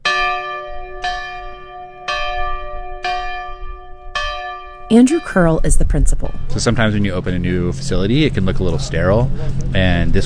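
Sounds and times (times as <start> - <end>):
original schoolhouse bell ringing: 0.0 - 9.1
speech: 4.9 - 10.2
faint rumble: 5.1 - 10.2.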